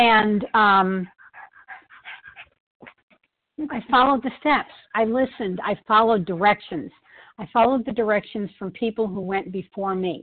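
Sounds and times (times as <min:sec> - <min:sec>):
speech: 0:00.0 - 0:01.2, 0:03.6 - 0:10.2
dog panting heavily: 0:00.4 - 0:03.0.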